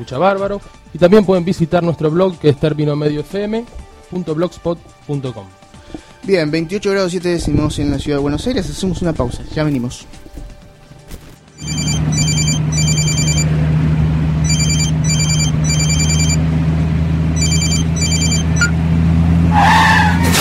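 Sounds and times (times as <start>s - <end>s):
speech: 0.0s - 5.6s, 6.2s - 10.2s
car tyres skidding: 2.4s - 20.4s
car engine droning while driving: 11.5s - 20.4s
mobile phone ringing while driving: 11.6s - 13.6s, 14.4s - 16.4s, 17.3s - 18.8s.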